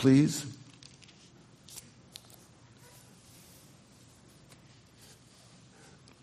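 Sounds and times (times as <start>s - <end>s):
audience turning Bible pages in a large room: 0.7s - 2.5s.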